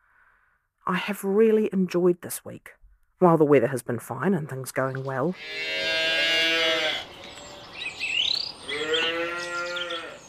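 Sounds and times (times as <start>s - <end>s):
speech: 0.9s - 6.2s
faint birdsong chirping: 4.7s - 10.2s
dairy cow mooing: 5.4s - 7.6s, 8.7s - 10.2s.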